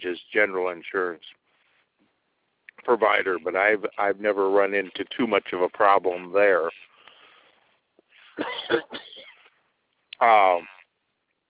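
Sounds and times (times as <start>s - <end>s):
speech: 0.4s - 1.4s, 2.8s - 6.8s, 8.4s - 9.0s, 10.2s - 10.7s
person clearing throat: 8.4s - 9.5s.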